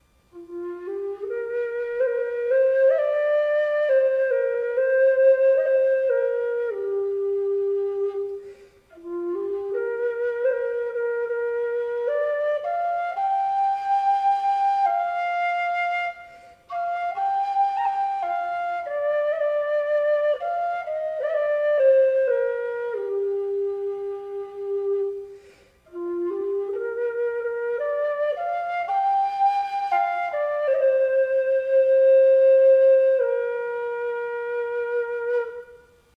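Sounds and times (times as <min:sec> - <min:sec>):
low whistle in F: 0:00.0 - 0:36.1.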